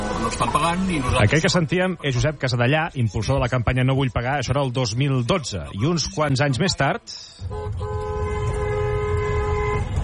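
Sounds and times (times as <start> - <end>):
laughter: 0.0 - 3.9, 4.5 - 7.0
steady low rumble of road traffic: 0.0 - 10.0
speech: 0.3 - 8.0
car horn honking at toll booths: 7.4 - 10.0.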